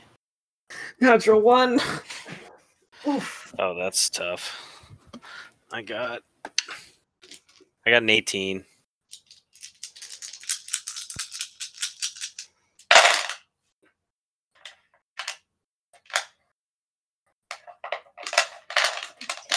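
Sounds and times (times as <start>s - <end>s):
speech: 1.0s - 2.4s, 3.0s - 4.7s, 5.7s - 6.8s, 7.9s - 8.7s
big handful of dice clattering across a hard surface: 9.1s - 13.4s.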